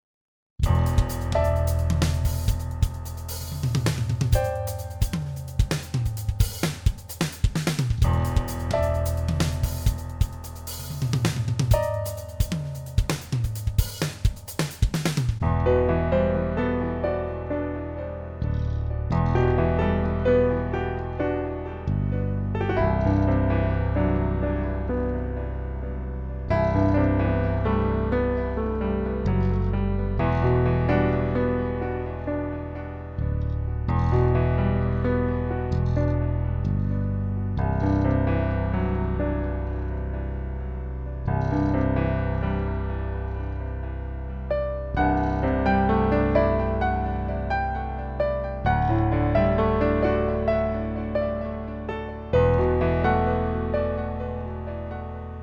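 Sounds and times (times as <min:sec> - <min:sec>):
piano: 0:00.6 - 0:55.4.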